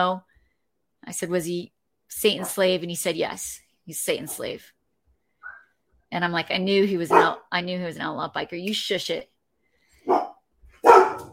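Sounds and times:
speech: 0.0s - 0.3s, 1.0s - 4.8s, 6.1s - 9.3s
dog barking: 7.1s - 7.4s, 10.0s - 11.3s.

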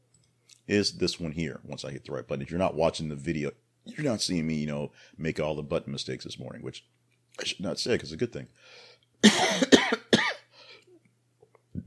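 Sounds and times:
speech: 0.7s - 9.8s
harsh coughs: 9.2s - 10.5s.

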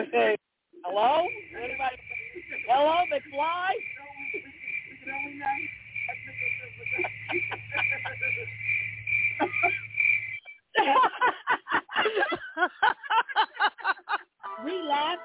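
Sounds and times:
people talking loudly: 0.0s - 8.5s
crickets chirping: 0.1s - 15.2s
low hum: 1.1s - 10.5s
laughter: 1.3s - 3.4s, 4.0s - 8.6s, 9.4s - 9.9s, 10.8s - 15.2s
speech: 2.8s - 3.9s.

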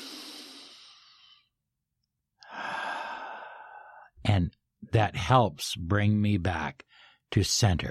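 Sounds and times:
person taking a deep slow breath: 0.0s - 1.6s, 2.4s - 4.2s
speech: 4.3s - 7.9s.

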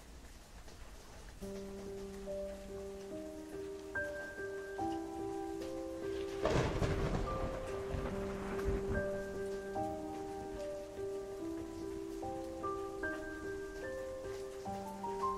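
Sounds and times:
heavy rain hissing in a thunderstorm: 0.0s - 15.3s
soft sustained musical tones: 1.4s - 15.3s
loud rolling crack of thunder: 6.1s - 11.9s.

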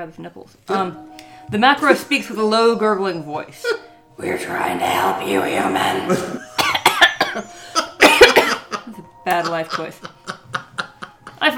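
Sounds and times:
speech: 0.0s - 6.4s, 9.3s - 10.1s
harsh wet coughs: 6.1s - 8.9s
laughter: 7.7s - 11.5s.

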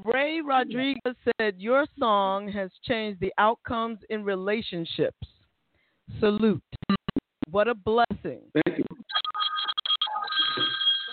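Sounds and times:
speech: 0.3s - 5.4s, 6.1s - 6.7s, 7.5s - 10.8s
telephone ringing with a trilling electronic tone: 9.1s - 11.1s.

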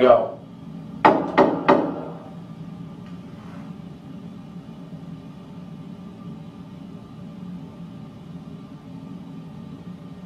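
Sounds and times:
knuckles knocking on a wooden door: 1.0s - 2.2s.

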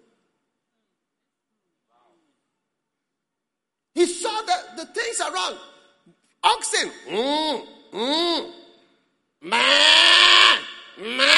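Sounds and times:
speech: 4.0s - 5.7s, 6.4s - 8.6s, 9.4s - 10.2s, 11.0s - 11.3s
man imitating sheep bleating: 7.1s - 8.7s, 9.4s - 11.3s.

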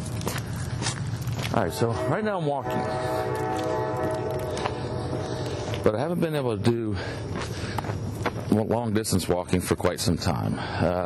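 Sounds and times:
train rolling through town: 0.0s - 8.8s
train's sustained tonal whine: 1.2s - 6.8s
speech: 1.6s - 4.2s, 5.8s - 7.6s, 8.5s - 11.0s.

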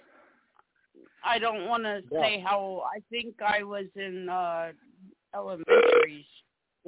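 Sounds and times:
speech: 1.2s - 6.8s
loud burp: 5.7s - 6.1s.

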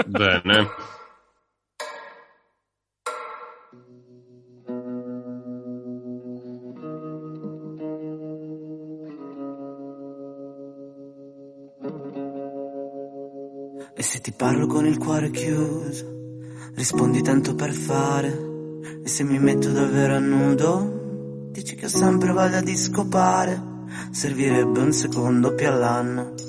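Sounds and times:
laughter: 0.0s - 0.9s
speech: 0.0s - 1.0s, 14.4s - 16.2s, 16.8s - 20.9s, 21.6s - 26.4s
stabs in an indie pop song intro: 0.0s - 2.5s, 3.1s - 3.8s
warm effect-laden sustained keyboard chords: 14.6s - 26.4s.

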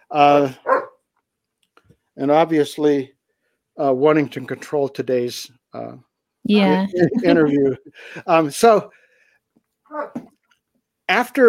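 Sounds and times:
speech: 0.1s - 0.7s, 2.2s - 3.2s, 3.8s - 9.0s, 9.9s - 10.3s, 11.1s - 11.4s
dog barking sharply: 0.6s - 1.0s
laughter: 4.0s - 5.9s, 6.7s - 8.8s.

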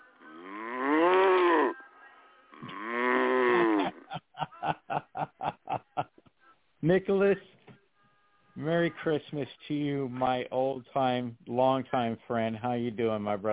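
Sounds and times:
cow mooing: 0.1s - 1.8s, 2.6s - 4.0s
laughter: 3.8s - 6.3s
speech: 6.9s - 7.5s, 8.6s - 13.5s.

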